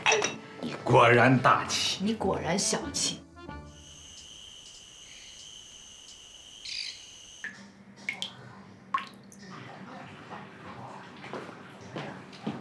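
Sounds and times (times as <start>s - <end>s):
speech: 0.8s - 3.2s
water dripping from a tap: 7.4s - 9.5s.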